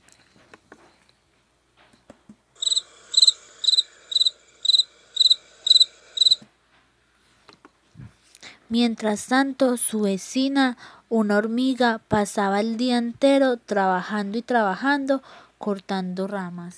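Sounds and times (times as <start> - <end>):
cricket chirping: 2.6 - 6.4
speech: 8.7 - 16.7.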